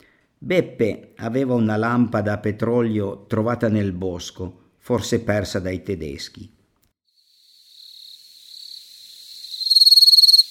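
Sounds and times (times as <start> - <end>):
speech: 0.4 - 6.6
crickets chirping: 7.1 - 10.4.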